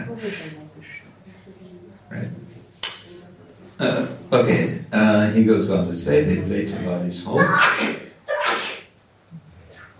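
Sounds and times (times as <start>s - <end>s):
speech: 0.2s - 1.0s, 3.8s - 8.0s
person sneezing: 7.4s - 8.9s.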